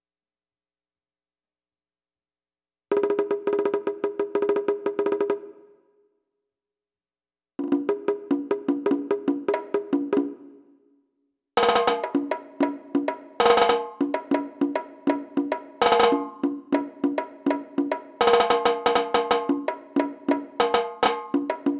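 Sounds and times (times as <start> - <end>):
percussion: 2.9 - 5.9, 7.6 - 10.8, 11.6 - 21.7.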